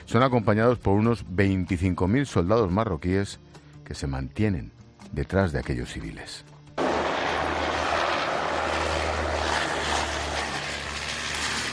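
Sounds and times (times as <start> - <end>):
speech: 0.1 - 6.5
aircraft engines droning overhead: 6.8 - 11.7.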